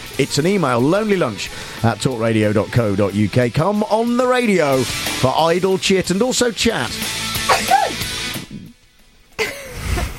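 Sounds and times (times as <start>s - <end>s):
speech: 0.2s - 7.2s
person sneezing: 7.4s - 8.8s.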